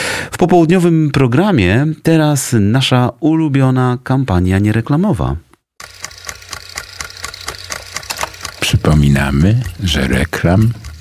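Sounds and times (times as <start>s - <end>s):
speech: 0.4s - 5.9s, 8.8s - 10.9s
car engine with a faulty clutch knocking: 5.8s - 10.9s.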